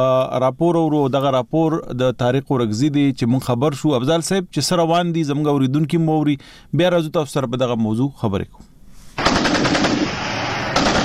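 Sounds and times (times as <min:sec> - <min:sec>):
speech: 0:00.0 - 0:08.7
heavy-weapons automatic gunfire from border fighting in Kurram on the Pakistan-Afghan frontier: 0:09.2 - 0:11.0.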